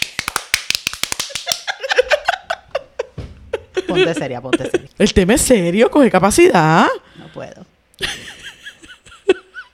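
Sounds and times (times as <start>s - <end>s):
sharp hand claps: 0.0s - 1.8s
laughter: 1.3s - 4.9s, 8.0s - 9.7s
speech: 3.9s - 7.7s.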